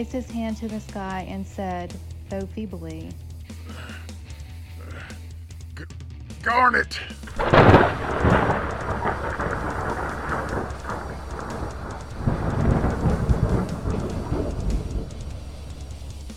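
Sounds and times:
speech: 0.0s - 3.8s, 5.8s - 8.6s
heavy rolling thunder: 7.3s - 16.3s
lightning crack: 7.3s - 16.3s.

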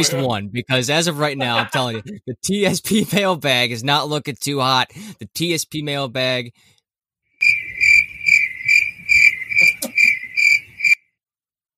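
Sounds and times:
speech: 0.0s - 6.7s
laughter: 1.4s - 3.2s, 9.6s - 10.2s
cricket chirping: 7.4s - 11.0s.

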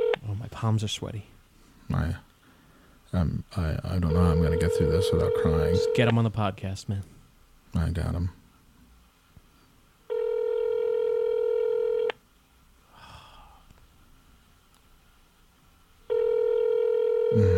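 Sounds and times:
speech: 0.6s - 1.3s, 1.9s - 2.3s, 3.1s - 7.1s, 7.7s - 8.4s
telephone ringing electronically with long buzzing tones: 4.1s - 6.1s, 10.1s - 12.1s, 16.1s - 17.5s.

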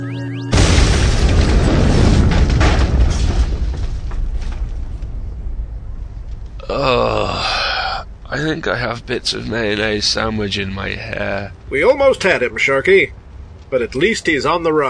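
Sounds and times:
big explosion with rumbling roar: 0.5s - 10.4s
speech: 8.5s - 14.8s.

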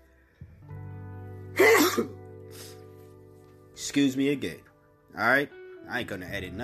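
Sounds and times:
loud human sneeze: 1.6s - 2.2s
speech: 2.0s - 2.7s, 3.9s - 6.6s.

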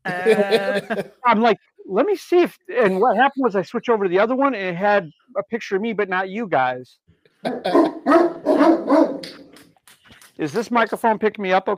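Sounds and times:
laughter: 0.0s - 1.4s, 2.8s - 3.3s
speech: 0.0s - 9.6s, 10.4s - 11.7s
dog barking: 7.5s - 9.4s.

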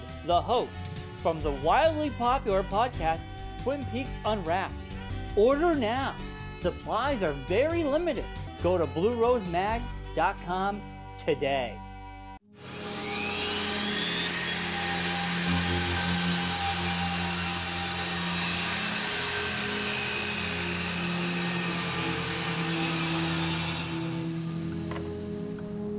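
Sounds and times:
speech: 0.2s - 11.8s
power saw cutting through wood: 12.6s - 25.2s.

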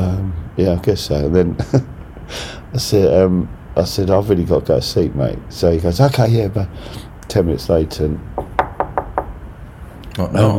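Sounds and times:
speech: 0.6s - 8.4s, 10.2s - 10.5s
knocking on a door: 8.4s - 9.4s.

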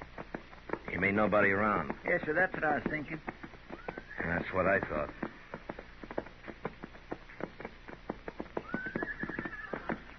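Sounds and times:
saddled horses' hooves clip-clopping on hard ground: 0.0s - 10.1s
speech: 1.0s - 3.4s, 4.3s - 5.2s
horse whinnying: 8.6s - 10.1s.

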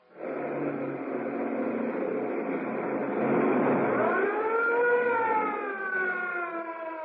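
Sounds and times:
speeding vehicle noise: 0.0s - 7.0s
police car siren wailing: 1.0s - 7.0s.

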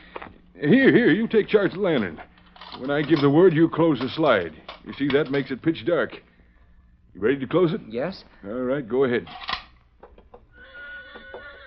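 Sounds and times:
speech: 0.6s - 6.3s, 7.2s - 9.5s
horse whinnying: 10.5s - 11.6s.

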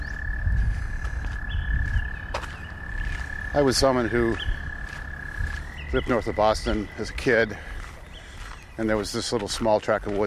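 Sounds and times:
chorus of frogs trilling: 0.0s - 10.2s
speech: 3.6s - 4.5s, 5.9s - 7.7s, 8.8s - 10.2s.

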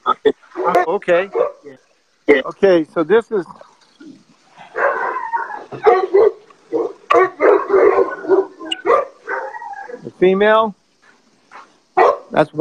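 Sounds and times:
large 12-year-old mastiff barking and baying in Riverside County: 0.5s - 1.7s, 4.6s - 10.1s, 11.6s - 12.4s
speech: 1.0s - 1.5s, 2.4s - 3.6s, 10.2s - 10.8s, 12.3s - 12.6s.

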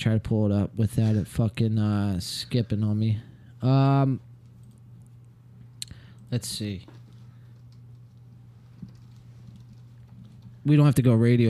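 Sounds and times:
speech: 0.0s - 4.3s, 6.3s - 7.0s, 10.6s - 11.4s
steady electrical hum: 0.0s - 11.4s
typing on a computer keyboard: 8.8s - 10.5s.

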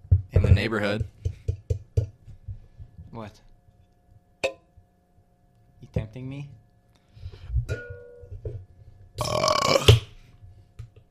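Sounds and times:
speech: 0.6s - 1.2s, 3.2s - 3.5s, 5.9s - 6.6s, 7.7s - 8.0s
soft throaty gurgles: 9.2s - 10.0s
loud drawn-out rumbling burp: 9.2s - 10.1s.

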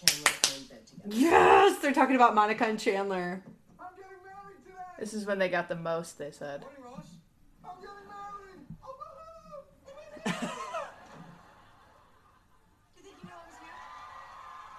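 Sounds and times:
speech: 1.1s - 3.5s, 5.0s - 7.1s
laughter: 10.0s - 13.7s
studio audience at a sitcom taping in London cheering and whooping: 13.3s - 14.7s.

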